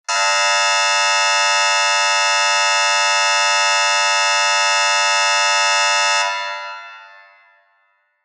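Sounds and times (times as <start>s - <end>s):
long theatre or hall curtain-up buzzer with reverb: 0.1s - 7.8s.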